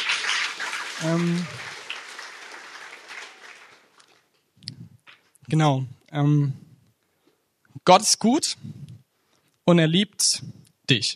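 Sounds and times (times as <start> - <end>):
audience applauding: 0.0 - 4.4
speech: 1.0 - 1.7, 5.5 - 6.6, 7.9 - 8.8, 9.7 - 11.1.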